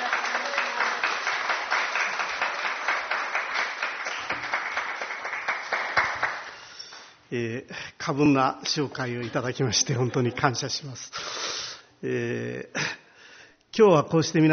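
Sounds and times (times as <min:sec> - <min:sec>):
room full of people applauding: 0:00.0 - 0:07.2
speech: 0:07.3 - 0:13.0, 0:13.8 - 0:14.5.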